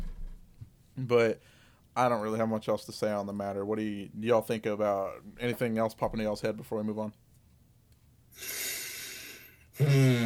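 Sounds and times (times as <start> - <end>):
speech: 1.0 - 7.2, 8.4 - 8.6, 9.8 - 10.2
heavy breathy exhale into microphone: 8.4 - 10.2.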